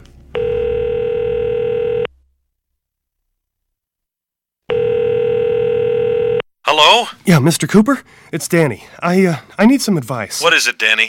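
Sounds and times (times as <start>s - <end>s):
telephone line ringing through the earpiece: 0.3s - 2.1s, 4.7s - 6.4s
speech: 6.8s - 11.0s.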